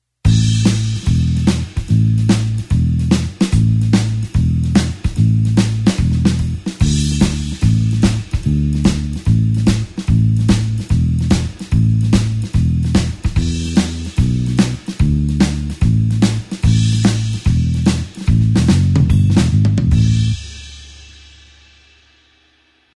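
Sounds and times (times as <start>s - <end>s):
blues shuffle bassline in A: 0.3s - 21.4s.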